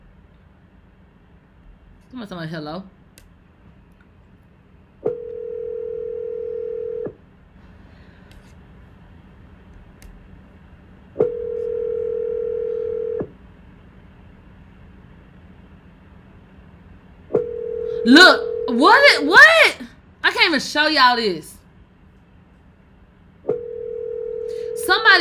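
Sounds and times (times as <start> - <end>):
speech: 2.1 - 3.0, 20.3 - 21.5
telephone ringing tone during outgoing call: 5.1 - 7.1, 11.2 - 13.3, 17.4 - 19.2, 23.5 - 25.1.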